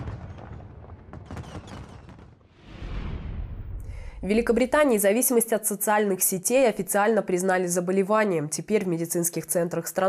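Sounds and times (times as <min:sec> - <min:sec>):
Chinese New Year fireworks display in Hong Kong crackling and booming: 0:00.0 - 0:04.8
rumbling wash of sustained fireworks noise: 0:02.6 - 0:05.0
speech: 0:04.2 - 0:10.0.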